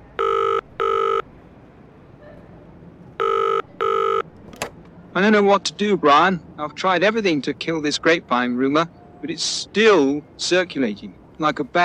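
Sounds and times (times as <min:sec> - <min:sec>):
telephone ringback tone of a call being placed: 0:00.2 - 0:01.2, 0:03.2 - 0:04.3
speech: 0:05.2 - 0:11.8.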